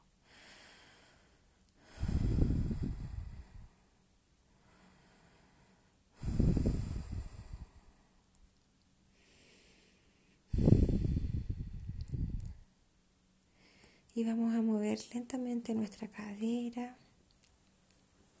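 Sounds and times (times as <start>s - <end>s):
soft inhales: 0.2s - 4.0s, 4.6s - 8.2s, 9.1s - 12.6s, 13.5s - 14.1s
forceful open-mouthed exhales: 1.9s - 3.7s, 6.2s - 7.8s, 10.5s - 12.6s
speech: 14.2s - 17.0s.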